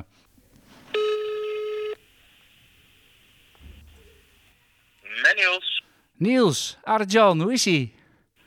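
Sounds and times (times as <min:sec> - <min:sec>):
outgoing call telephone ringing tone: 0:01.0 - 0:02.0
speech: 0:06.2 - 0:08.0.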